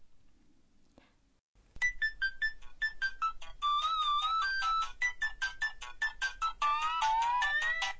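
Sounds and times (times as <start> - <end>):
telephone ringing with an electronic melodic ringtone for an incoming call: 1.8 - 7.9.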